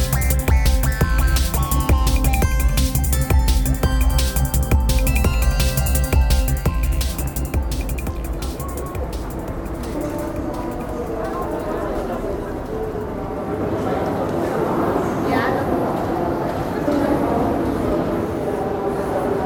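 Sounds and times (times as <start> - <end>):
crowd murmur in an indoor train station: 0.0 - 19.4
voices: 7.1 - 19.4.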